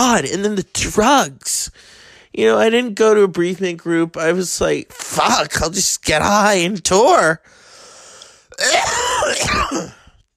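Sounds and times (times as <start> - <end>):
speech: 0.0 - 7.6, 8.5 - 10.0
loud raspy phlegmy cough: 8.5 - 10.2.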